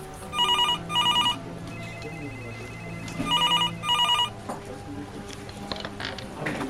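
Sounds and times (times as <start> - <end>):
telephone ringing on a police emergency line: 0.3 - 4.4.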